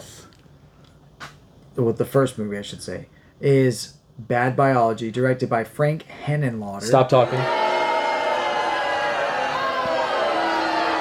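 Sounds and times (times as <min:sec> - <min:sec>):
speech: 0:01.8 - 0:07.6
large crowd booing: 0:06.8 - 0:10.9.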